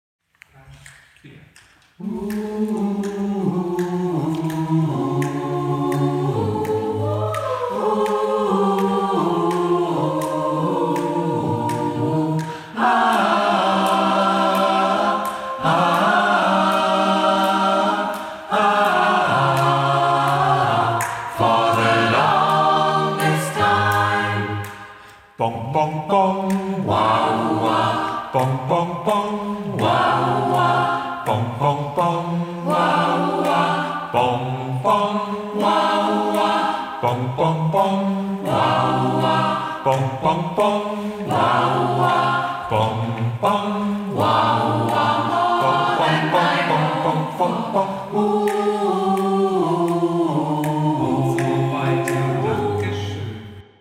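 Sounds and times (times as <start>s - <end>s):
tutti ensemble practice: 2.0s - 53.6s.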